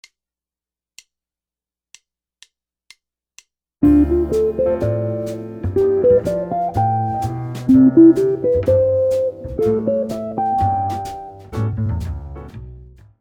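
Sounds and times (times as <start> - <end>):
easy jazz guitar arpeggios: 3.8 - 12.9.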